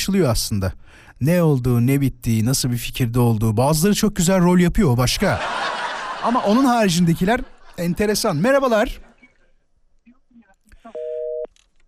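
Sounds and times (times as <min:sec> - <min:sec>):
speech: 0:00.0 - 0:09.1
laughter: 0:05.1 - 0:09.7
telephone busy tone after caller hung up: 0:10.9 - 0:11.5.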